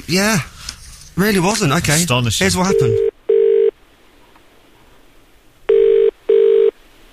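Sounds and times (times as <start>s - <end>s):
speech: 0.0s - 0.5s, 1.2s - 3.1s
telephone ringing with electronic double-burst pattern: 2.6s - 3.8s, 5.7s - 6.8s.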